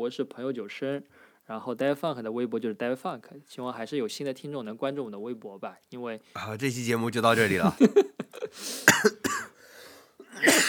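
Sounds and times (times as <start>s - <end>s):
speech: 0.0s - 9.5s
laughter: 7.2s - 8.6s
person coughing hard in a severe fit: 8.4s - 9.6s, 10.2s - 10.6s.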